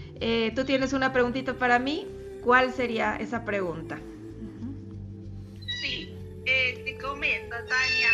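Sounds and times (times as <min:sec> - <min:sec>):
speech: 0:00.2 - 0:04.2, 0:07.0 - 0:08.1
cat meowing: 0:07.7 - 0:08.1.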